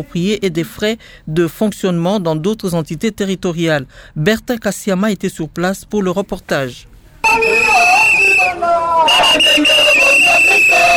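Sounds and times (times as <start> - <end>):
speech: 0.0 - 7.5, 8.6 - 10.9
crowd of protesters chanting and shouting together: 7.2 - 10.9
protesters blowing shrill whistles: 7.2 - 10.9.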